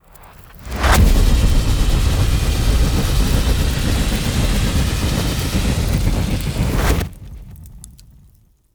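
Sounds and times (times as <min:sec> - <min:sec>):
long fire beam: 0:00.6 - 0:07.1.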